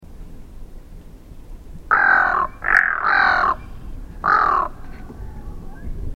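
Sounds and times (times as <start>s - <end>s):
white-necked loon calling: 1.9s - 6.0s.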